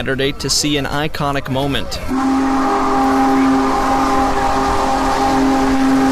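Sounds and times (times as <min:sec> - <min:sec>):
speech: 0:00.0 - 0:03.5
crowd of thousands gathered along the track: 0:00.0 - 0:06.1
steam locomotive rolling along railroad track: 0:01.9 - 0:06.1
steam locomotive whistle blast: 0:02.1 - 0:06.1.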